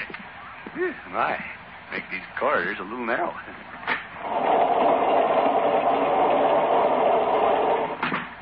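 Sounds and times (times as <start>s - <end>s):
speech: 0.8s - 4.4s
train rolling along the rails: 4.2s - 8.0s.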